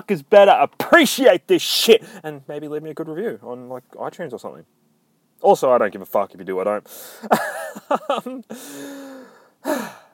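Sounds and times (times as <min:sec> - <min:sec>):
speech: 0:00.0 - 0:04.8, 0:05.4 - 0:10.0
person panting to catch their breath: 0:06.9 - 0:07.3, 0:08.5 - 0:10.1.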